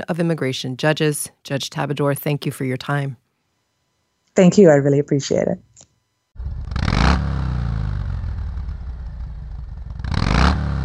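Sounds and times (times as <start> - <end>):
speech: 0.0 - 3.2, 4.4 - 5.7
Harley-Davidson motorcycle engine idling and revving: 6.4 - 10.8.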